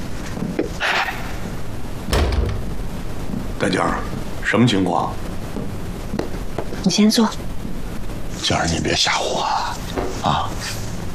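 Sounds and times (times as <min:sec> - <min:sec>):
hiss: 0:00.0 - 0:11.1
door closing with a dull heavy thud: 0:02.1 - 0:02.8
speech: 0:03.6 - 0:05.2, 0:06.8 - 0:07.5, 0:08.4 - 0:10.8.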